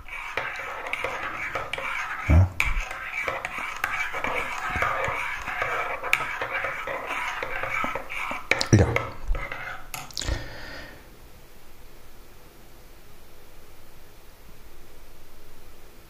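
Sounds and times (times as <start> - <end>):
spoon stirring a chocolate cappuccino in a cup: 0.0 - 10.2.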